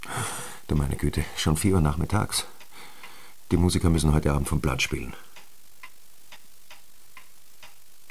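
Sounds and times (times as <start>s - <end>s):
soft hiss: 0.0s - 8.1s
speech: 0.7s - 2.6s, 3.5s - 5.2s
clock ticking: 1.8s - 8.1s.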